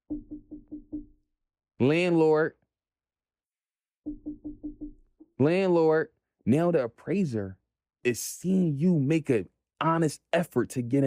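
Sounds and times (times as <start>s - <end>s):
quick knocks on a door: 0.0s - 1.2s, 4.1s - 5.3s
speech: 1.8s - 2.6s, 5.4s - 11.0s.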